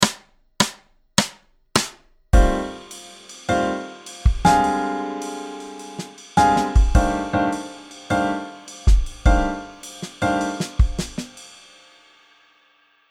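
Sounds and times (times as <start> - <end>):
left hand jazz swing piano: 2.4 - 11.3.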